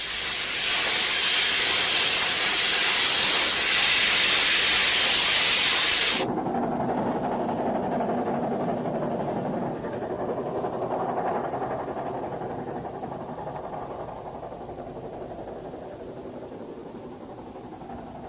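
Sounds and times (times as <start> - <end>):
steam venting from a steam locomotive: 0.0 - 6.3
low mechanical rumble: 0.0 - 18.2.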